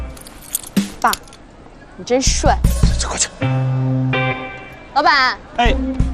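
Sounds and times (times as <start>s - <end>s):
car keys jingling as handed over: 0.1s - 1.5s
speech: 1.0s - 1.3s, 2.0s - 4.1s, 5.0s - 6.0s.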